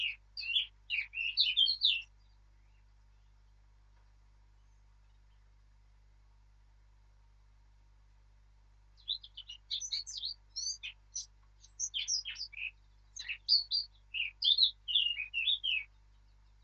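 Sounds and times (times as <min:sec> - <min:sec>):
Eurasian blackcap Sylvia atricapilla singing: 0:00.0 - 0:03.4, 0:09.0 - 0:16.6
faint low hum: 0:00.0 - 0:16.6.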